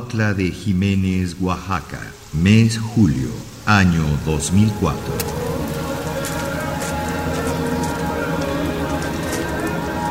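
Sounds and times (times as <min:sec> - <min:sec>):
steady rain in the mountains of the Sierra Oaxaqueña: 0:00.0 - 0:10.0
speech: 0:00.1 - 0:05.5.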